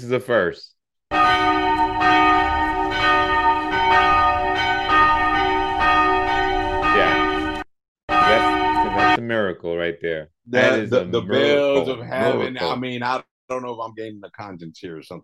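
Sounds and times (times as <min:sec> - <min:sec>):
speech: 0:00.0 - 0:03.2, 0:09.2 - 0:15.2
church bell ringing: 0:01.1 - 0:09.2.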